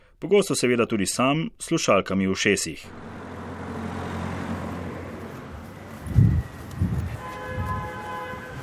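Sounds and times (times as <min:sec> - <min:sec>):
speech: 0:00.2 - 0:03.2
steady low traffic rumble on a busy city street: 0:02.3 - 0:08.6
heavier thuds of passing vehicles: 0:02.9 - 0:08.6.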